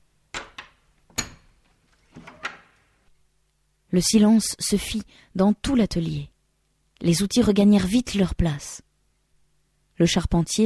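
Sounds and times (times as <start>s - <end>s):
workshop door opening: 0.4s - 2.8s
speech: 3.9s - 6.3s, 7.0s - 8.9s, 10.0s - 10.6s.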